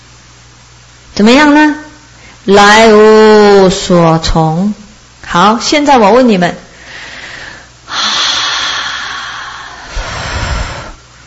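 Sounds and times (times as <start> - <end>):
speech: 1.2 - 1.8, 2.4 - 6.6
deep breath in and out: 6.8 - 11.2.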